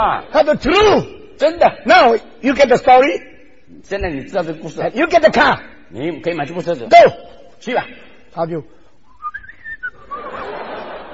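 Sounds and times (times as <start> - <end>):
speech: 0.0 - 8.8
person whistling a cheerful tune: 9.2 - 10.3
laughter: 9.9 - 11.1.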